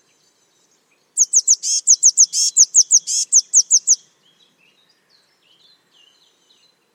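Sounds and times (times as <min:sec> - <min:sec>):
Eurasian blue tit giving thin very high notes: 0:01.2 - 0:04.0.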